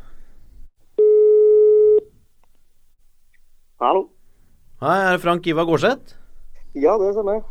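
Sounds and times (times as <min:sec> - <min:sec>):
faint noise: 0:00.0 - 0:07.5
outgoing phone call ringing tone: 0:01.0 - 0:02.1
speech: 0:03.8 - 0:04.2, 0:04.8 - 0:06.2, 0:06.8 - 0:07.5.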